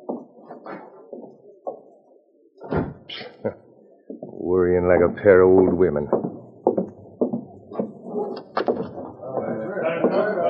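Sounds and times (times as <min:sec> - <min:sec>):
side door closing thud: 0:02.6 - 0:03.2
speech: 0:03.1 - 0:03.6, 0:04.5 - 0:06.3
side door knocking thumps: 0:05.0 - 0:10.4.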